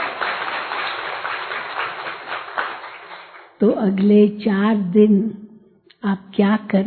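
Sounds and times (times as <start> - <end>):
crowd applauding: 0.0 - 3.6
speech: 3.6 - 5.4, 6.0 - 6.8.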